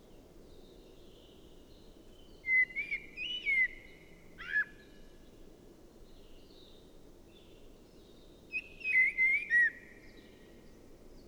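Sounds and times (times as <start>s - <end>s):
common blackbird singing, Turdus merula: 0.0s - 4.6s, 6.0s - 11.2s
low background noise: 0.0s - 11.2s.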